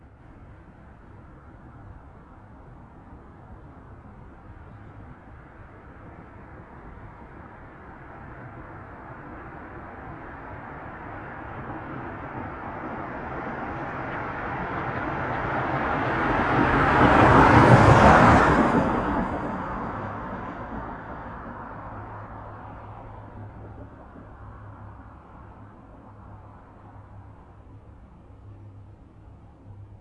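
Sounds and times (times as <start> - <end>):
car passing by fast in a desert: 8.4 - 27.2.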